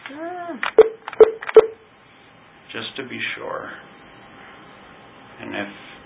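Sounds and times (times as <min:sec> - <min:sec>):
telephone keypad tones dialing: 0:00.8 - 0:01.8
speech: 0:02.7 - 0:04.0, 0:05.4 - 0:05.8.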